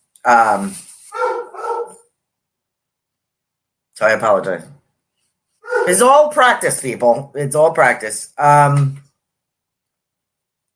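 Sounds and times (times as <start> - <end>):
speech: 0.2 - 0.9, 4.0 - 4.8, 5.8 - 9.0
bored dog barking: 1.1 - 2.1, 5.6 - 6.0.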